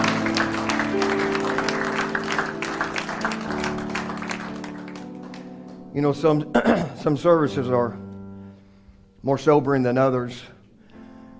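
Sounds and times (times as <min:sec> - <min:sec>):
church congregation applauding with hand clapping: 0:00.0 - 0:05.9
sustained low musical tones: 0:00.0 - 0:11.3
speech: 0:06.0 - 0:08.0, 0:09.2 - 0:10.6.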